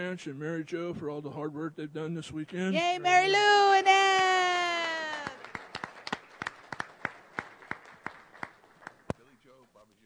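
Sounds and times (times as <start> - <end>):
speech: 0.0 - 4.3
few people clapping: 3.8 - 9.7.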